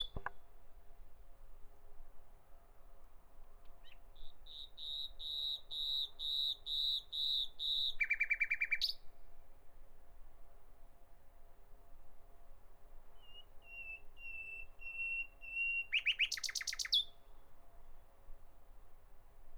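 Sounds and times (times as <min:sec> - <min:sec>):
common nightingale singing: 0:03.8 - 0:09.0, 0:13.2 - 0:17.2.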